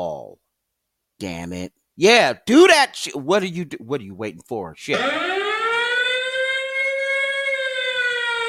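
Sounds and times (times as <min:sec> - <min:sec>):
speech: 0:01.2 - 0:05.3
siren wailing: 0:05.0 - 0:08.4.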